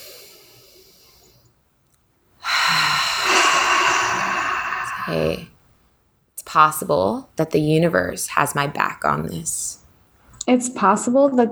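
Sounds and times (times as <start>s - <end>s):
deep breath during a guided relaxation exercise: 0.0s - 1.5s, 2.4s - 5.6s
speech: 5.1s - 5.5s, 6.5s - 9.8s, 10.4s - 11.5s.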